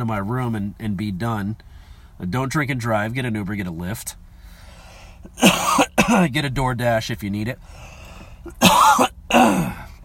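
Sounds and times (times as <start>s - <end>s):
speech: 0.0s - 4.2s, 5.2s - 9.8s
man coughing: 5.3s - 6.4s, 8.5s - 10.0s.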